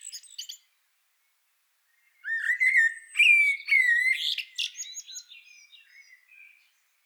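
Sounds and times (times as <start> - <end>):
common blackbird Turdus merula singing: 2.2 - 7.0.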